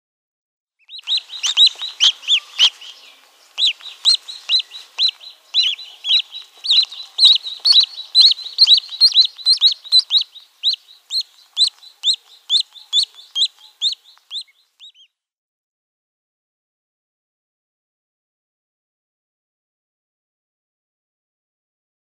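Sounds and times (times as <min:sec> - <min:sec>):
downy young mallard ducklings calling: 0:00.8 - 0:15.1.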